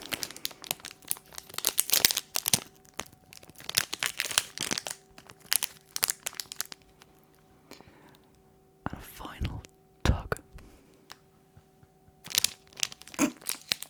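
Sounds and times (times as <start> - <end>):
condom wrapper being torn open, crinkling thin packaging: 0.0 - 7.5, 12.2 - 13.8.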